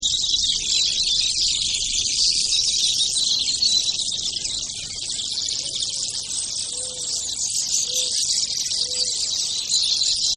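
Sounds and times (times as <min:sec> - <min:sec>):
desert birds calling: 0:00.0 - 0:10.3
desert owl calling: 0:03.0 - 0:10.0.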